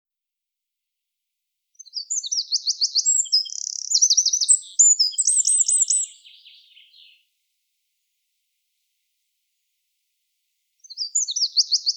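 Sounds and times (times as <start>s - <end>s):
Eurasian wren Troglodytes troglodytes singing: 1.8s - 7.2s, 10.8s - 11.9s.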